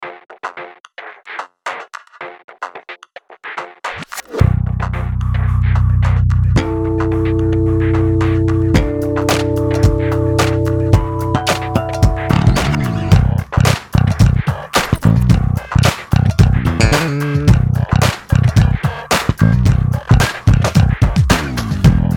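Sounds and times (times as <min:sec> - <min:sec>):
modern bass: 0:04.4 - 0:22.1.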